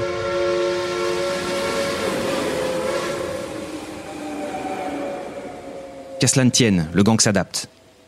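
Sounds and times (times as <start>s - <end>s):
steam train horn sounding a long sustained chord: 0.0s - 6.3s
steam train rumbling along: 0.0s - 8.0s
speech: 6.2s - 7.8s.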